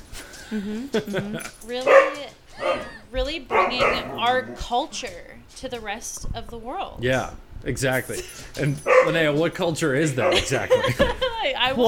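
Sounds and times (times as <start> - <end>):
laughter: 0.4 - 1.6, 10.2 - 11.8
speech: 0.5 - 11.8
dog barking in short whiny yips: 1.8 - 4.4, 8.8 - 9.2, 10.2 - 10.6.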